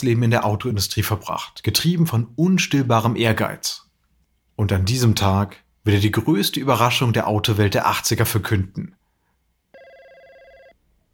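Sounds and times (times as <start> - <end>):
speech: 0.0 - 3.8, 4.6 - 9.0
quiet hiss: 0.0 - 9.7
1980s telephone ringing with buzzing electronic tone: 9.7 - 10.8.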